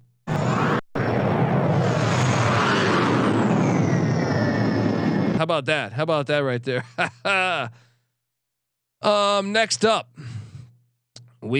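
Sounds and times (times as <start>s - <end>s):
loud jet airplane roar with whining tone: 0.3s - 5.4s
speech: 5.5s - 7.8s, 9.0s - 10.2s
laughter: 6.8s - 7.7s.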